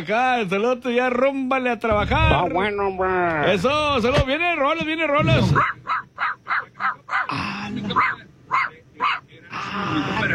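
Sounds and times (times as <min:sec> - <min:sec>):
speech: 0:00.0 - 0:06.0, 0:07.3 - 0:08.2, 0:09.0 - 0:10.3
rough noise: 0:00.0 - 0:10.3
dog barking: 0:05.6 - 0:07.3, 0:08.0 - 0:09.3.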